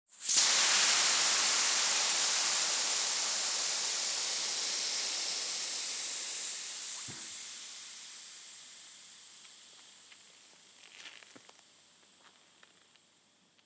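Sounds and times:
air escaping from a bicycle inner tube: 0:00.1 - 0:10.8.

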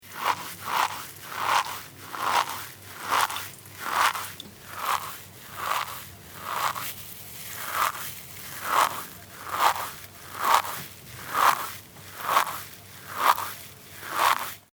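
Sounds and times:
metal sponge being kneaded: 0:00.0 - 0:14.7.

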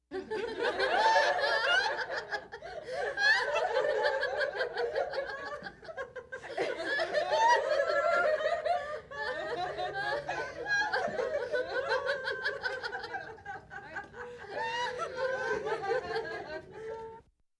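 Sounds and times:
women laughing: 0:00.2 - 0:17.2.

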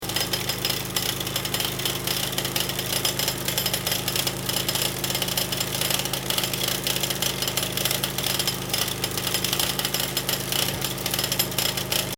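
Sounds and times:
small pneumatic jackhammer: 0:00.0 - 0:12.1.

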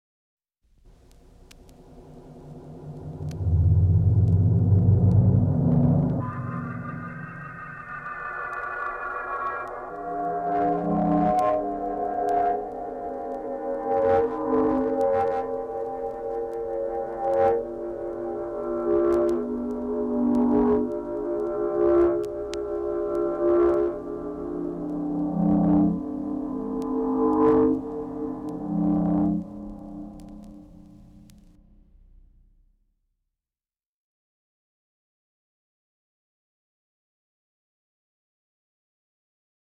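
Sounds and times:
science-fiction space flutes: 0:01.9 - 0:31.8.

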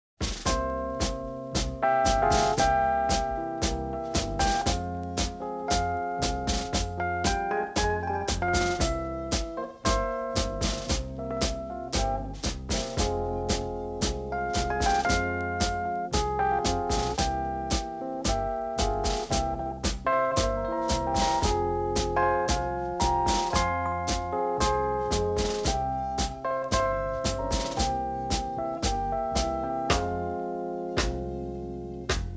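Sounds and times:
tango dance rhythms: 0:00.2 - 0:32.3.

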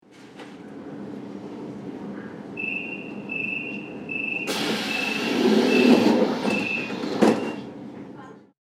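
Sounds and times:
S-Bahn train door signal: 0:02.6 - 0:07.8.

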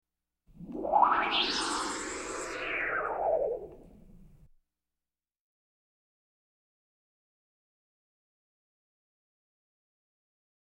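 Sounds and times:
science-fiction pulsing frequency tone rising and falling: 0:00.6 - 0:03.9.

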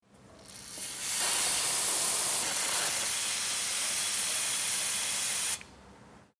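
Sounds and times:
compressed air blowing off: 0:00.8 - 0:05.6.

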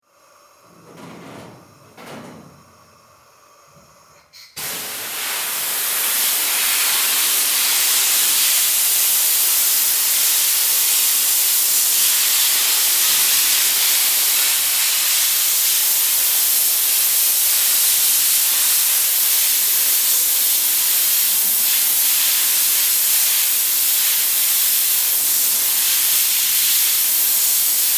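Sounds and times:
sandblaster: 0:04.6 - 0:27.9.

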